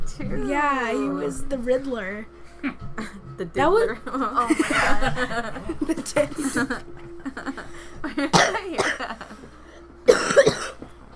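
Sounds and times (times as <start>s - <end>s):
speech: 0.2s - 9.5s
laughter: 3.8s - 9.6s
raspy coughing: 8.2s - 9.4s, 10.1s - 10.9s.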